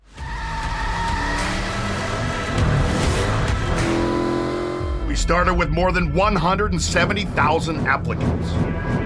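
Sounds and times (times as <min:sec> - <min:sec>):
muscle car tires screeching while burning rubber: 0:00.2 - 0:05.2
muscle car engine roaring: 0:00.3 - 0:05.5
speech: 0:05.2 - 0:08.9.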